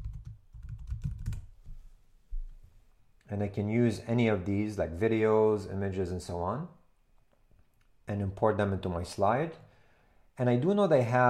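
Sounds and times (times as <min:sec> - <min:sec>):
typing on a computer keyboard: 0:00.0 - 0:01.5
speech: 0:03.3 - 0:06.8, 0:08.1 - 0:09.7, 0:10.4 - 0:11.2.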